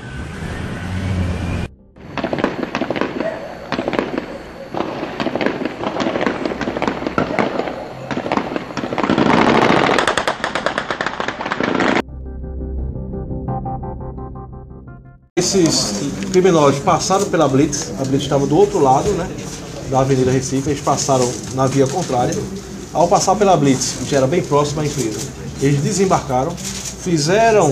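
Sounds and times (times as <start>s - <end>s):
low rumble: 0.0s - 3.0s, 12.0s - 24.5s
rapid bursts of gunfire on a city avenue: 2.1s - 12.0s
speech: 15.5s - 27.7s.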